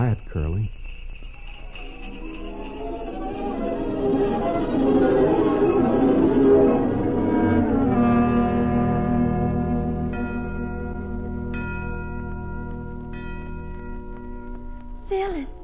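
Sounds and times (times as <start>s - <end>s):
bright bell chime: 0.0s - 5.8s, 10.1s - 15.6s
bells ringing: 0.0s - 15.6s.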